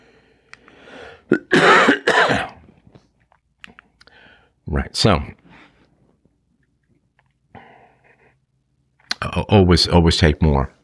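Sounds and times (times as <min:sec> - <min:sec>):
quiet breathing: 0:00.0 - 0:01.3, 0:03.7 - 0:04.6, 0:05.4 - 0:06.3, 0:07.4 - 0:08.6
person clearing throat from a tickle: 0:01.3 - 0:02.6
person coughing harshly: 0:01.3 - 0:02.6
speech: 0:05.0 - 0:05.4, 0:09.5 - 0:10.8.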